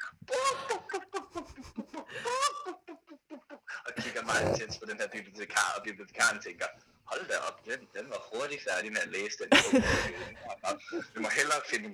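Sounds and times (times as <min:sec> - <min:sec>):
laughter: 0:00.3 - 0:04.9, 0:09.5 - 0:11.9
person imitating a clucking hen: 0:04.2 - 0:04.8
speech: 0:04.2 - 0:11.9.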